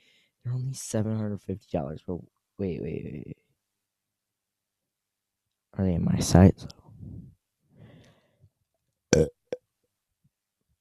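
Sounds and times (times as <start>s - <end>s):
speech: 0.5s - 3.4s, 5.8s - 6.8s
loud burp: 9.1s - 9.6s.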